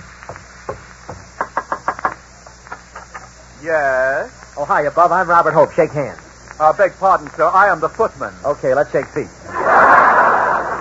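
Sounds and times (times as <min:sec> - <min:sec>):
knocking on a house door: 0:00.3 - 0:01.8
laughter: 0:01.5 - 0:03.5, 0:09.5 - 0:10.7
speech: 0:03.6 - 0:09.5.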